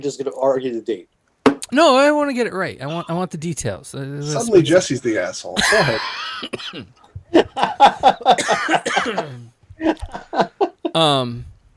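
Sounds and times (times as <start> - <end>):
speech: 0.0 - 11.5
laughter: 5.6 - 6.5, 7.3 - 11.0
person coughing in short rough bursts: 6.4 - 6.9, 8.3 - 9.5.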